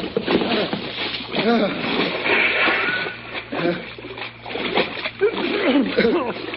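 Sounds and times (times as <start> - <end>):
men jumping from a boat into cold water, splashing: 0.5 - 6.5.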